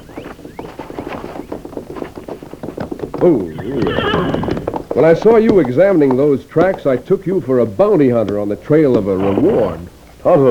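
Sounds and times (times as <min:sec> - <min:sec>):
horse hooves clip-clopping: 0:00.0 - 0:10.4
horse whinnying: 0:02.2 - 0:06.3, 0:08.8 - 0:10.0
speech: 0:03.2 - 0:10.4.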